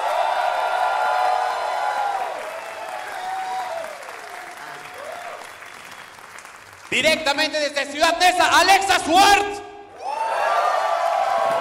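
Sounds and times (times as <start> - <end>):
excited whoops and cheers from the crowd: 0.0 - 6.3, 9.9 - 11.5
sustained audience applause: 0.0 - 7.6, 10.0 - 11.5
speech: 6.9 - 9.6.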